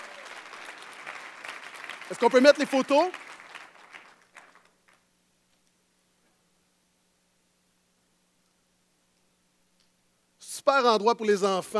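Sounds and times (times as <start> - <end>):
audience applause in a church: 0.0 - 5.1
speech: 2.1 - 3.2, 10.8 - 11.7.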